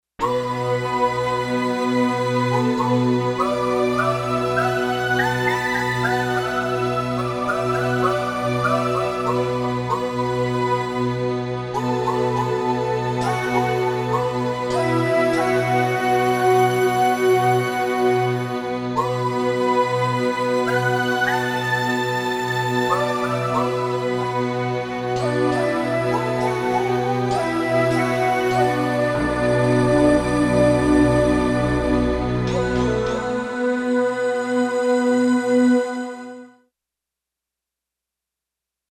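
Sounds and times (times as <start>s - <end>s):
Japanese flute orchestra on digital synthesizer: 0.2s - 36.4s.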